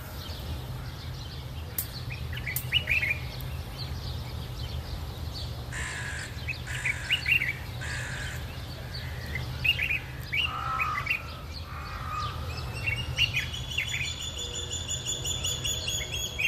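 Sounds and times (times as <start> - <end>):
dawn chorus of many birds singing and chirping on Crocodile Island on the River Nile in Egypt: 0.0 - 16.4
repeated crow-like caws: 5.7 - 8.5, 10.4 - 12.4.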